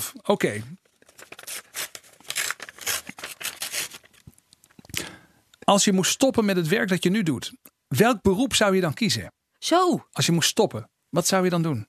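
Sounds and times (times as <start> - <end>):
speech: 0.0 - 0.8, 5.7 - 11.8
paper envelope holding a question card being torn open: 0.8 - 4.2.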